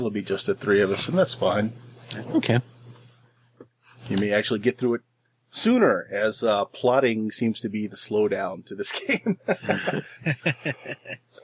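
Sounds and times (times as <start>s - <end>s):
speech: 0.0s - 2.7s, 4.1s - 11.4s
laughter: 8.9s - 11.4s
throat clearing with voiced hems and a sharper rasp: 11.0s - 11.4s.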